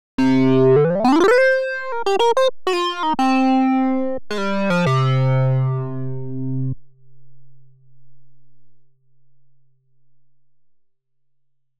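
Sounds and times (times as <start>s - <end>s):
Oberheim OB-X pure sync synthesizer tone: 0.2s - 6.8s.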